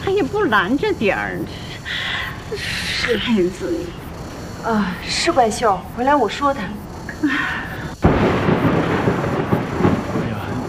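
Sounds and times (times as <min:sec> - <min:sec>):
steady hiss of rain: 0:00.0 - 0:10.6
speech: 0:00.2 - 0:07.7
loud thunder crack: 0:08.0 - 0:10.6.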